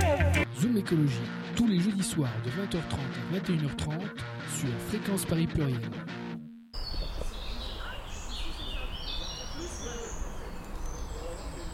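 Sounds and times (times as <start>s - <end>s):
speech: 0.8s - 6.2s
birds singing in high scattered chirps and calls: 6.8s - 11.7s
steady low traffic rumble from cars: 6.8s - 11.7s.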